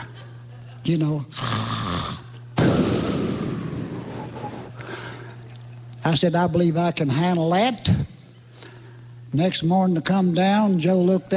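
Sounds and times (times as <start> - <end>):
speech: 0.8 - 1.6, 6.1 - 8.0, 9.3 - 11.3
voice imitating a loud snore: 1.3 - 2.8.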